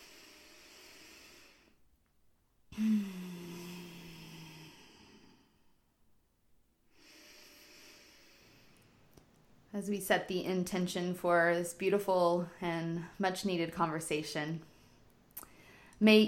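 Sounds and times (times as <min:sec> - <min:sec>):
deep guided breaths in through the nose and out through the mouth: 0:00.0 - 0:01.9, 0:02.7 - 0:06.0, 0:06.9 - 0:09.1, 0:14.6 - 0:16.0
speech: 0:02.8 - 0:03.2, 0:09.8 - 0:14.7, 0:16.0 - 0:16.2.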